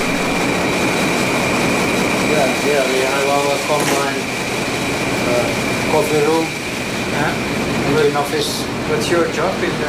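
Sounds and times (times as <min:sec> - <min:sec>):
ship engines rumbling in the engine room of a 188-metre-long ship: 0:00.0 - 0:09.8
speech: 0:02.7 - 0:04.2, 0:05.3 - 0:06.6, 0:07.2 - 0:09.8.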